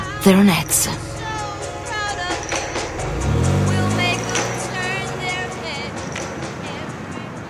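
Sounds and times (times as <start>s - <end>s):
indistinct voices: 0.0s - 1.5s
road noise: 0.0s - 7.4s
speech: 0.2s - 1.1s
Ford Thunderbird low engine hum accelerating: 0.8s - 7.4s.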